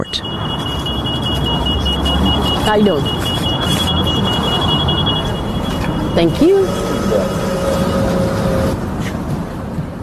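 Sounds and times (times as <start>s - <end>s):
speech: 0.0s - 0.6s, 2.7s - 3.8s, 6.2s - 7.4s
thin sustained mechanical whine: 0.0s - 9.0s
city bus engine rumble: 0.0s - 10.0s.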